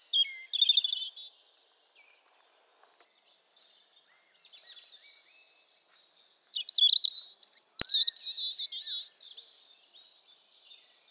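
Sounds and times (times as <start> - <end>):
European robin Erithacus rubecula singing: 0.0 - 1.3, 6.6 - 9.2.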